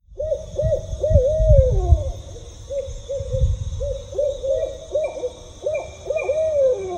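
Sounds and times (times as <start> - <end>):
group of barred owls hooting at a rescue in Illinois: 0.1 - 6.9.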